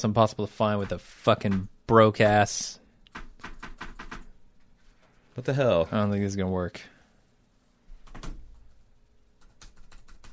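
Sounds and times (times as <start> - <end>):
speech: 0.0 - 2.8, 5.4 - 6.9
low hum: 0.0 - 10.3
typing on a computer keyboard: 3.1 - 4.3, 8.0 - 8.7, 9.4 - 10.3.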